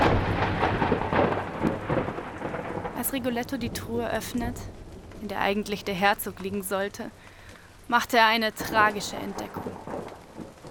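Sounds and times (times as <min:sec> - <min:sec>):
rolling thunder: 0:00.0 - 0:06.2, 0:08.6 - 0:10.7
heavy rain: 0:00.0 - 0:10.7
speech: 0:03.1 - 0:07.3, 0:07.9 - 0:09.9.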